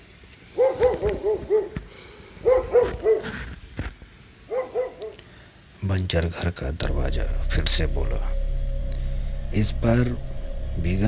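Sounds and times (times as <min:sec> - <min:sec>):
several dogs barking loudly and sharply: 0:00.6 - 0:01.8, 0:02.4 - 0:03.3, 0:04.5 - 0:05.2
speech: 0:06.0 - 0:08.3, 0:09.5 - 0:11.0.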